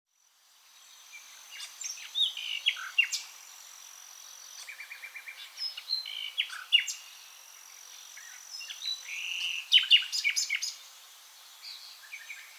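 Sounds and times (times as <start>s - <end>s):
common nightingale (Luscinia megarhynchos) singing varied phrases: 0.8s - 3.7s, 4.4s - 7.2s, 7.9s - 10.9s.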